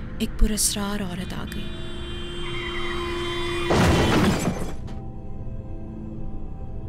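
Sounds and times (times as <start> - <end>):
steady engine hum: 0.0 - 5.2
speech: 0.2 - 1.9
car crash: 2.7 - 5.0
glass shattering in car crash: 3.7 - 4.9.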